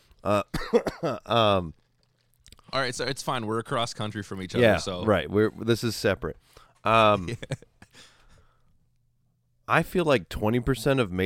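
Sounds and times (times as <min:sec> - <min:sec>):
speech: 0:00.2 - 0:01.8, 0:02.7 - 0:08.1, 0:09.7 - 0:11.2
voiced cough like throat clearing: 0:00.4 - 0:01.2.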